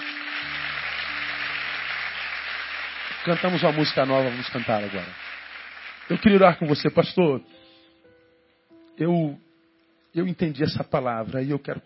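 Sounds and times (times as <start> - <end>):
low sustained instrumental tone: 0.0 - 5.3
crowd applauding: 0.0 - 7.1
speech: 3.2 - 5.2, 6.1 - 7.6, 9.0 - 9.4, 10.1 - 11.8.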